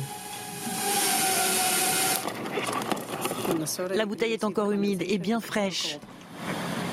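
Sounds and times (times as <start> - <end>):
delivery drone whirring: 0.0 - 3.5
speech: 3.6 - 6.5.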